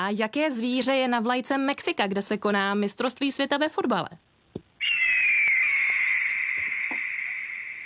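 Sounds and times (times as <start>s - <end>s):
speech: 0.0s - 5.0s
eagle cry: 4.8s - 7.8s.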